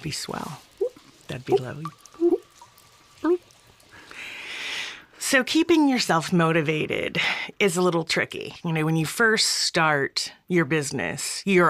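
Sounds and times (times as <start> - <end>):
speech: 0.0 - 0.7, 1.3 - 2.0, 5.3 - 11.6
hollow water drips in a dungeon: 0.0 - 5.6
soft ambient hiss: 0.0 - 6.0.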